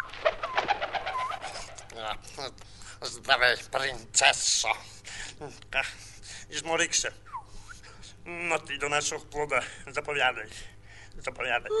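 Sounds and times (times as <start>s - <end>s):
parrot flying in giving chirping squawky calls: 0.0s - 1.9s
speech: 2.0s - 7.3s, 8.2s - 11.7s.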